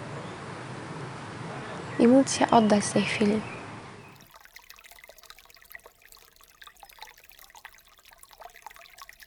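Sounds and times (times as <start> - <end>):
speech: 2.0 - 3.6
river flowing calmly with soft bubbling and trickling: 4.2 - 9.2.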